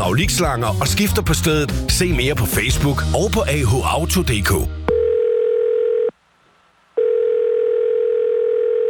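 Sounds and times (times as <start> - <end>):
speech: 0.0 - 4.8
telephone ringing tone while waiting in a phone queue: 4.9 - 6.1, 7.0 - 8.8.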